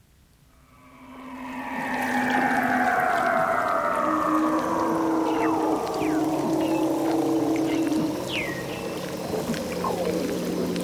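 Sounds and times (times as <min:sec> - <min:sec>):
low drone: 0:00.5 - 0:10.8
Weddell seal whistling in the Antarctic: 0:00.8 - 0:08.7.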